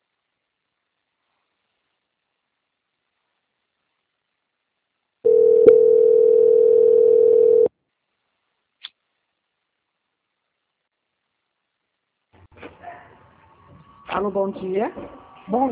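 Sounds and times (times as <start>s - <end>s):
telephone line tone while a call is being transferred: 5.3s - 7.7s
speech: 14.2s - 15.6s.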